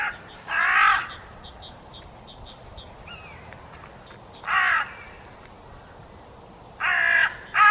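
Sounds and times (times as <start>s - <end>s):
Carrion crow Corvus corone giving harsh caws: 0.0s - 1.2s, 4.4s - 5.2s, 6.8s - 7.7s.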